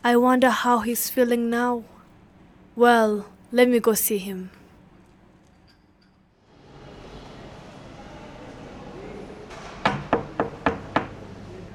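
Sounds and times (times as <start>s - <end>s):
speech: 0.0s - 1.9s, 2.8s - 4.6s
sharp knocking on a wooden door: 9.8s - 11.2s.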